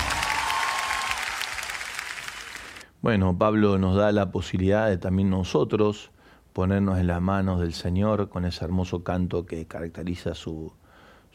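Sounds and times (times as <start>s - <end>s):
audience applause at a religious gathering: 0.0s - 2.8s
speech: 3.0s - 10.8s.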